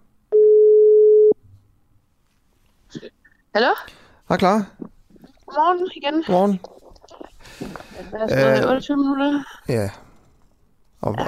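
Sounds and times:
quiet noise: 0:00.0 - 0:11.2
steady telephone tone as a call is placed: 0:00.3 - 0:01.4
speech: 0:03.6 - 0:04.9, 0:05.6 - 0:06.8, 0:07.5 - 0:10.0, 0:11.0 - 0:11.2.

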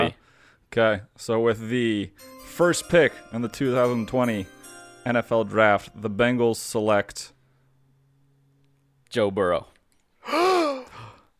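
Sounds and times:
speech: 0:00.7 - 0:07.4, 0:09.1 - 0:10.6
exaggerated mock gasp of surprise: 0:10.2 - 0:11.3.

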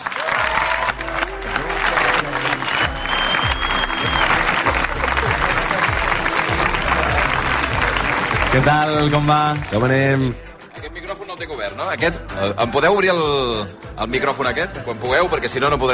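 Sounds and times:
cheers: 0:00.0 - 0:09.7
crowd applauding: 0:00.0 - 0:10.4
whistles: 0:02.6 - 0:04.4
speech: 0:08.5 - 0:10.4, 0:11.8 - 0:15.9.

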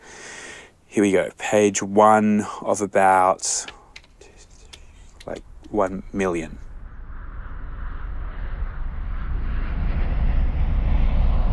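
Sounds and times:
speech: 0:01.0 - 0:03.8, 0:05.3 - 0:06.6
airplane engine roar at an airport: 0:04.2 - 0:11.5.

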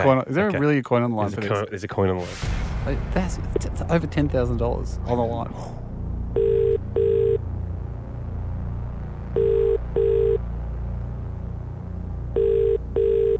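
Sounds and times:
speech: 0:00.0 - 0:05.8
low rumble: 0:02.3 - 0:13.3
phone call ringtone ringing in a double-pulse pattern: 0:06.4 - 0:07.4, 0:09.4 - 0:10.4, 0:12.4 - 0:13.3.

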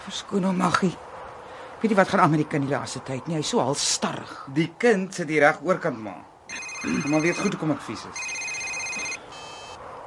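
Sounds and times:
speech: 0:00.1 - 0:01.1, 0:01.8 - 0:08.3
telephone ringing with high electronic trill: 0:06.5 - 0:09.8.

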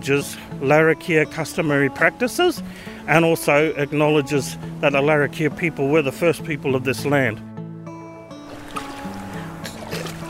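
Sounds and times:
speech: 0:00.0 - 0:07.5
water scooped by hand splashing onto a forehead: 0:08.4 - 0:10.2.

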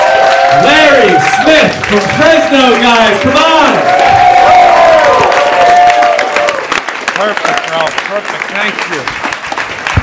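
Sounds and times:
audience cheering with whoops and shouts: 0:00.0 - 0:06.8
audience clapping: 0:00.0 - 0:10.0
speech: 0:01.4 - 0:04.0, 0:08.1 - 0:09.2.

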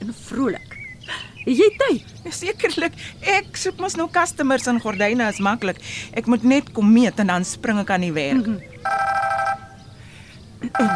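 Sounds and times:
speech: 0:00.1 - 0:09.6, 0:10.7 - 0:10.9
cellphone ringing with a bright electronic ring: 0:08.8 - 0:09.8, 0:10.7 - 0:10.9.

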